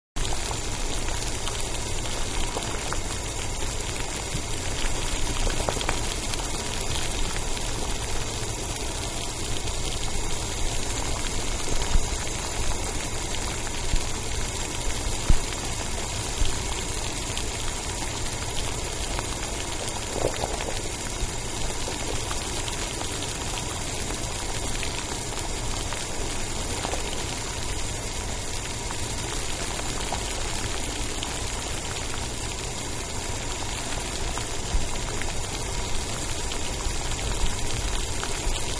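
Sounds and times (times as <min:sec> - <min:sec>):
water boiling in a pot on a gas stove: 0:00.2 - 0:38.7.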